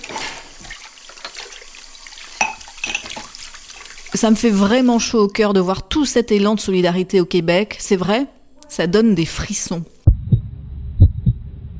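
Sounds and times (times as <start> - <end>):
running tap water in a home kitchen: 0.0 - 5.3
plates and utensils knocking together while washing dishes: 2.4 - 3.3
speech: 4.2 - 9.9.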